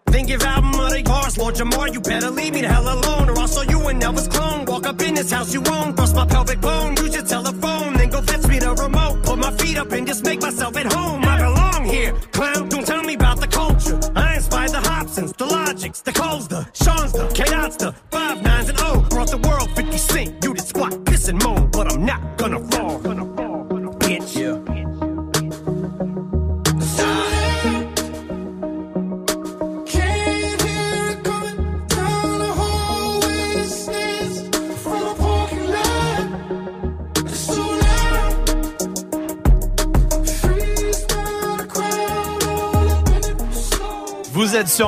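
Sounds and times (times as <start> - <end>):
rap track with steady beat and dense backing music: 0.0 - 44.8
rhythmic rap vocals: 0.0 - 44.8
deep punchy bass hits: 0.1 - 1.9, 2.7 - 4.5, 6.0 - 7.1, 8.0 - 9.7, 11.3 - 12.1, 13.2 - 15.1, 16.8 - 17.6, 18.5 - 20.2, 21.1 - 22.0, 37.8 - 38.7, 39.5 - 41.3, 42.8 - 43.9
speech: 0.2 - 12.7, 44.7 - 44.8.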